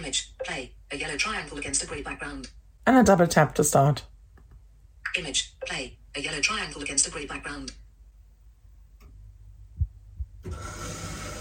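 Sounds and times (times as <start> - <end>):
speech: 0.1 - 4.1, 5.0 - 7.8
washing machine low hum: 9.0 - 11.3.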